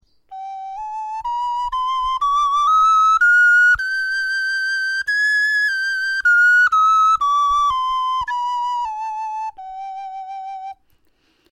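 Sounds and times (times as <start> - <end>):
bone flutes playing a scale: 0.3 - 10.8.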